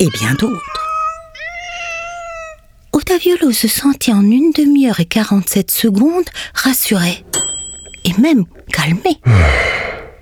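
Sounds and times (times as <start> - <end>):
speech: 0.0 - 0.7, 3.1 - 7.3, 8.1 - 9.9
cat meowing: 0.0 - 2.9.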